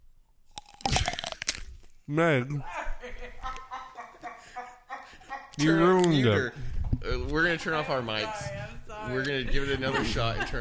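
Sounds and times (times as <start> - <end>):
person biting into an oiled, salted crispy snack: 0.5 - 1.9
speech: 2.1 - 2.8, 5.6 - 10.5
laughter: 2.6 - 6.3, 9.1 - 10.5.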